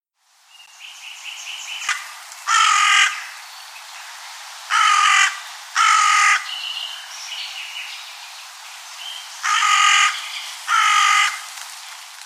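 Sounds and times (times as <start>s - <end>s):
carrion crow giving rasping caws: 1.8s - 3.4s, 4.7s - 6.5s, 9.4s - 11.5s.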